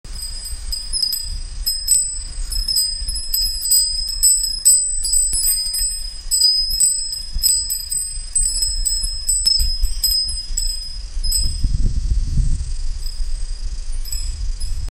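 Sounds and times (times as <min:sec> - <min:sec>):
wind chimes at a temple: 0:00.1 - 0:12.1, 0:12.8 - 0:14.9.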